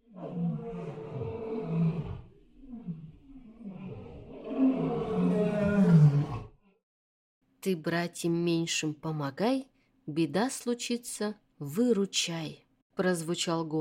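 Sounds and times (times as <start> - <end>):
elephant calf bellowing in distress in a clay pit: 0.1 - 6.5
speech: 7.6 - 13.7.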